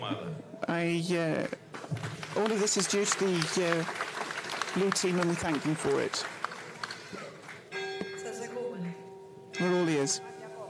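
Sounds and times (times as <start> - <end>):
murmuring background of voices: 0.0 - 10.6
speech: 0.7 - 1.6, 2.4 - 4.1, 4.7 - 6.4, 9.6 - 10.3
church bells ringing: 7.7 - 10.6.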